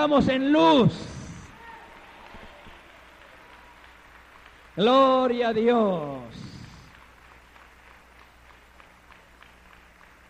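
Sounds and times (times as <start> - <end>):
speech: 0.0 - 1.1, 4.8 - 6.4
murmuring voices: 1.0 - 4.2
audience applauding at a church service: 1.0 - 10.2.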